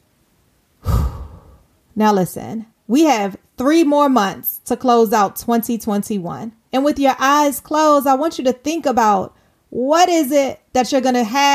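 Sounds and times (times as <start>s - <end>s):
deep inhaled breath during a guided relaxation exercise: 0.8s - 1.7s
speech: 2.0s - 11.5s.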